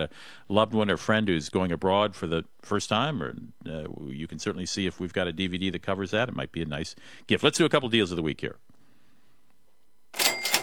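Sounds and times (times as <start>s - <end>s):
speech: 0.0s - 8.7s
cash register ka-ching: 10.1s - 10.6s.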